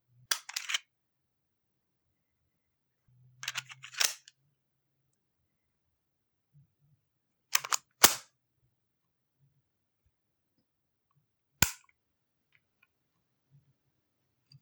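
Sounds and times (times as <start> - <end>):
Luger pistol magazine loading: 0.3 - 0.8, 3.4 - 4.2, 7.6 - 8.2, 11.6 - 11.8
Luger pistol dry fire click: 7.6 - 8.2, 11.6 - 11.8.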